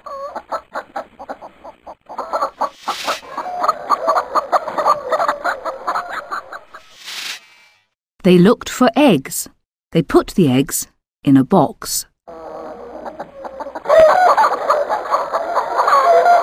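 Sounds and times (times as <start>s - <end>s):
several hens clucking: 0.0s - 6.9s, 12.3s - 16.4s
speech: 0.4s - 0.6s, 8.2s - 12.1s.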